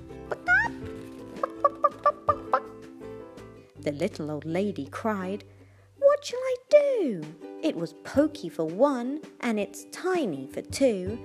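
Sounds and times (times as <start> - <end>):
hen squawking: 0.3 - 0.8, 1.4 - 2.7
hen clucking: 1.4 - 2.7
speech: 3.8 - 5.5, 6.2 - 11.2.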